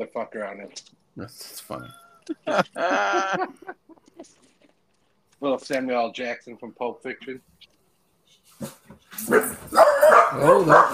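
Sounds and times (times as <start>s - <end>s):
speech: 0.0s - 4.5s, 5.4s - 7.7s, 8.6s - 10.9s
laughter: 1.7s - 4.7s
dog barking and snarling: 8.6s - 10.9s.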